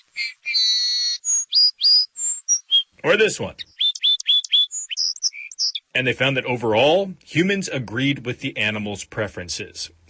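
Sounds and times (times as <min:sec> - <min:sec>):
song sparrow singing: 0:00.0 - 0:06.0
speech: 0:03.0 - 0:03.7, 0:06.0 - 0:10.0.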